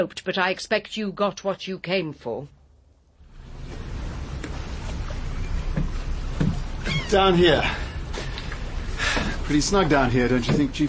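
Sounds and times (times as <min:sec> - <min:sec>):
speech: 0:00.0 - 0:02.6, 0:07.1 - 0:07.9, 0:09.5 - 0:10.8
small sailboat creaking as it rocks on the water: 0:03.4 - 0:10.8
sharp wooden knocks on a small sailboat: 0:05.7 - 0:07.1, 0:10.4 - 0:10.8.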